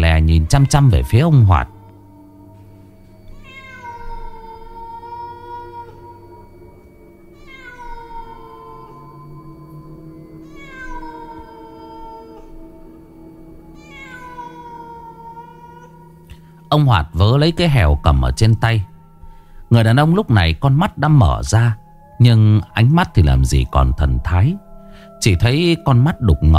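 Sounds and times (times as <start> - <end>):
steady low hum: 0.0 - 14.0, 14.6 - 26.5
speech: 0.3 - 1.8, 16.7 - 18.9, 19.7 - 24.6, 25.2 - 26.5
black cat meowing: 3.2 - 6.5, 7.3 - 9.5, 10.4 - 12.6, 13.8 - 16.2.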